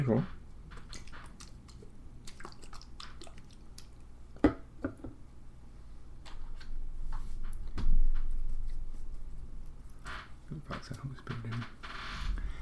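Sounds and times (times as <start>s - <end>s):
low hum: 0.0s - 12.5s
holy water being sprinkled, splashing and dripping: 0.9s - 4.0s.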